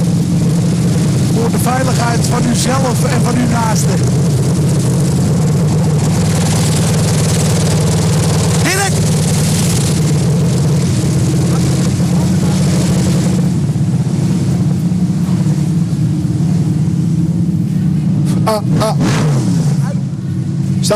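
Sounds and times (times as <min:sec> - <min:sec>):
motocross motorcycle engines rattling and revving during a motocross final: 0:00.0 - 0:20.9
speech: 0:01.6 - 0:04.6, 0:18.5 - 0:19.2
person shouting: 0:08.6 - 0:09.0.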